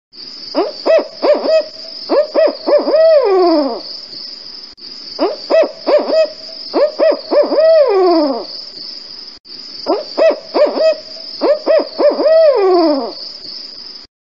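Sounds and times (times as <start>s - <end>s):
Barred Owl calling: 0.5s - 3.8s, 5.2s - 8.6s, 9.8s - 13.2s.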